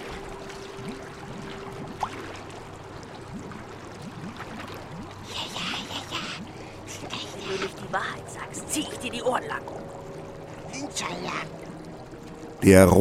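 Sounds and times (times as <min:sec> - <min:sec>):
icy water gushing through a leak in a boat: 0:00.0 - 0:12.6
speech: 0:07.9 - 0:10.0, 0:10.8 - 0:11.6, 0:12.6 - 0:12.9.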